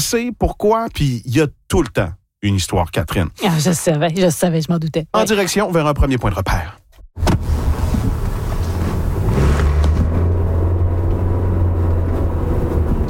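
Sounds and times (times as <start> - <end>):
speech: 0.1 - 7.5
car driving along a city boulevard past a factory: 7.2 - 13.0.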